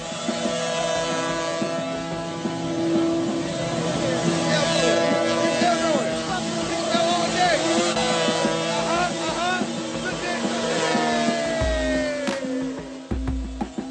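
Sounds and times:
motorcycle engine revving hard: 0.0s - 13.8s.

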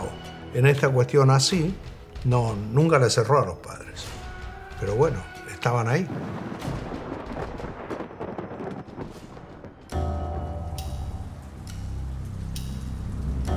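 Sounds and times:
speech: 0.5s - 4.1s, 4.8s - 6.7s
heavy rain: 4.8s - 10.0s.

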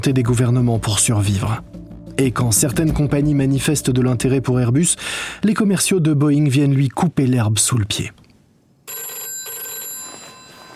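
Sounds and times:
speech: 0.0s - 8.2s
telephone ringing in a Paris apartment: 8.9s - 10.7s.

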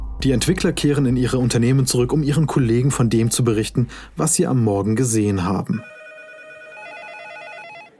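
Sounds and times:
speech: 0.2s - 5.9s
telephone ringing with an electronic trill: 5.7s - 7.9s.

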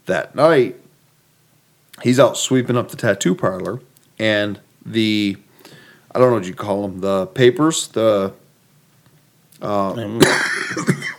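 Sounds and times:
speech: 0.1s - 0.8s, 2.0s - 5.4s, 6.1s - 8.4s, 9.6s - 11.0s
raspy cough: 10.2s - 11.1s.

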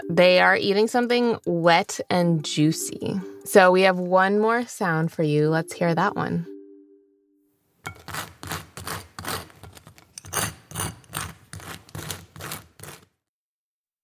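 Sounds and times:
speech: 0.1s - 6.5s
knife spreading something on toast: 7.9s - 13.2s.

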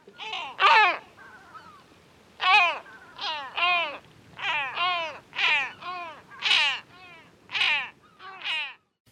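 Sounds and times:
great black-backed gull calling with harsh hoarse yelps: 0.0s - 9.0s.

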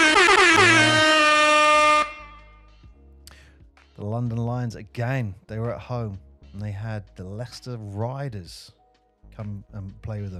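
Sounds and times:
sustained brassy air horn blast: 0.0s - 2.6s
speech: 4.1s - 8.8s, 9.4s - 10.3s.

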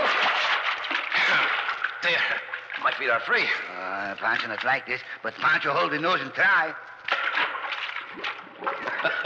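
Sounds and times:
water splashing and sloshing as someone ducks head under and pulls rawhide: 0.0s - 9.2s
speech: 1.3s - 6.9s, 8.2s - 9.2s.

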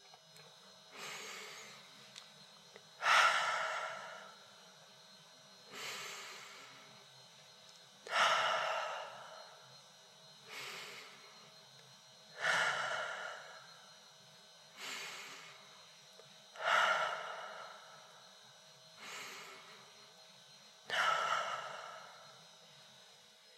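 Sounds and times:
slow deep breathing with exhales through the nose: 0.9s - 2.2s, 2.9s - 7.3s, 8.0s - 9.8s, 10.4s - 11.7s, 12.3s - 20.2s, 20.8s - 22.8s.

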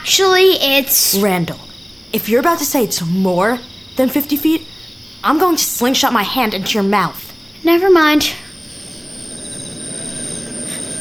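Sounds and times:
speech: 0.1s - 8.4s
drone motor whine: 8.4s - 10.9s.

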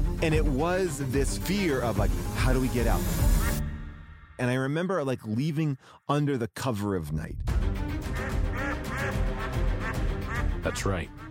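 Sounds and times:
speech: 0.2s - 3.5s, 4.4s - 7.5s, 10.6s - 11.2s
hotel guard ducks quacking: 8.1s - 11.2s.

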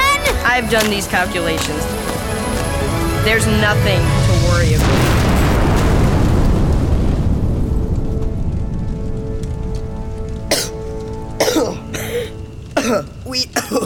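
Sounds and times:
speech: 0.6s - 2.0s, 3.2s - 5.1s
explosion set off by a burning fuse: 2.9s - 12.0s
person coughing: 10.5s - 10.8s, 11.4s - 13.8s.

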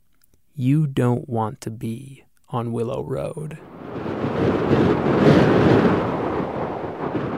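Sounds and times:
speech: 0.6s - 3.7s
storm wind roaring: 3.6s - 7.3s
heavy waves pounding a seawall: 3.8s - 7.3s.

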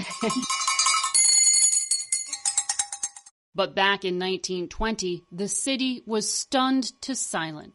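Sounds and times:
bells ringing: 0.0s - 3.3s
speech: 0.2s - 0.6s, 3.6s - 7.7s.

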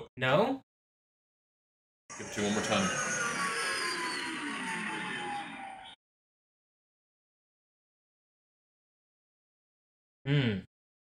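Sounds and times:
speech: 0.2s - 0.6s, 2.1s - 3.2s, 10.3s - 10.7s
starfighter flyby sound effect with roaring engine whoosh: 2.1s - 6.0s.

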